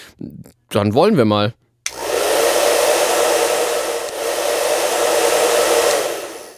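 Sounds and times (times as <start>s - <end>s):
speech: 0.2s - 1.6s
hair dryer blowing: 1.9s - 6.5s.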